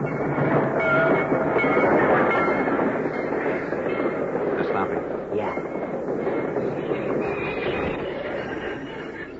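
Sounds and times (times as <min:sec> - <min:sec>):
heavy freight train grinding along the tracks in a railway cut: 0:00.0 - 0:09.3
metallic ringing and screeching of freight train: 0:05.5 - 0:09.3.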